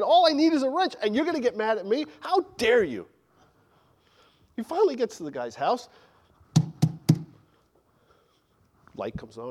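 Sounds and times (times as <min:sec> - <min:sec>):
speech: 0:00.0 - 0:03.2, 0:04.6 - 0:06.7, 0:09.0 - 0:09.5
firm knocks on a wooden house door: 0:06.6 - 0:07.4.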